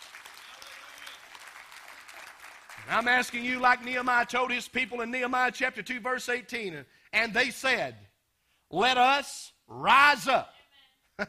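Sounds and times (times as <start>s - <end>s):
church congregation applauding in praise during a worship service: 0.0s - 4.5s
speech: 2.9s - 8.0s, 8.7s - 10.5s.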